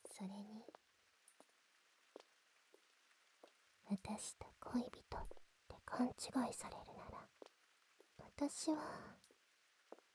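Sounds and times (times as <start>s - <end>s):
soft steady rain: 0.0s - 10.1s
speech: 0.2s - 0.8s, 4.0s - 7.0s, 8.4s - 9.2s.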